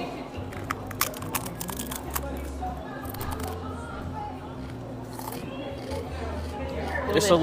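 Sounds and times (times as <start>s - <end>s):
steady low hum: 0.0s - 7.4s
crunching Cajun-seasoned potato chips against the microphone: 0.5s - 3.6s, 4.6s - 6.6s.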